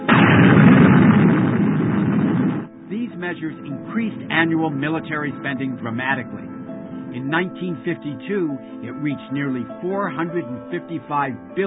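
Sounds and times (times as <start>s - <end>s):
hydrogen bomb explosion at Enewetak: 0.0s - 2.8s
speech: 3.5s - 11.6s.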